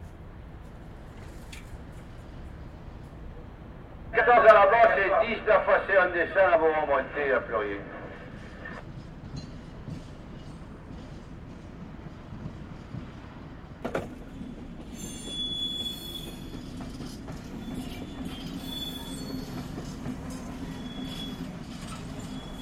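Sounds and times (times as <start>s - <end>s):
train railcars rolling at a railway station: 0.0s - 22.6s
thin high train wheel squeals: 14.8s - 22.6s.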